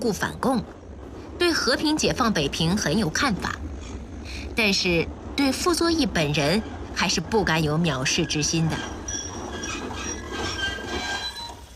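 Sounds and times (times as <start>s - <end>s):
speech: 0.0s - 0.8s, 1.4s - 3.6s, 4.6s - 9.0s
train coming to a stop with rolling rumble: 0.0s - 11.7s
thin high train wheel squeals: 7.7s - 11.7s.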